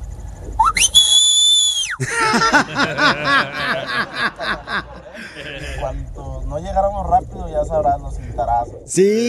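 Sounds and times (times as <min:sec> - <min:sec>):
loud piercing human whistle used to call children: 0:00.6 - 0:02.0
snickering laughter: 0:02.0 - 0:05.9
speech: 0:02.0 - 0:09.2.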